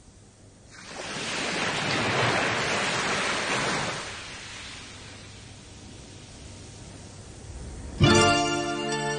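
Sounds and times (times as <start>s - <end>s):
ocean waves washing onto a sandy beach: 0.7s - 5.9s
music: 7.9s - 9.1s.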